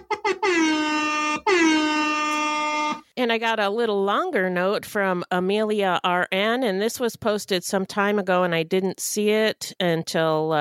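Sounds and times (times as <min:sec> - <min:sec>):
hip-hop style air horn sound effect blasts: 0:00.0 - 0:03.1
speech: 0:03.2 - 0:10.5.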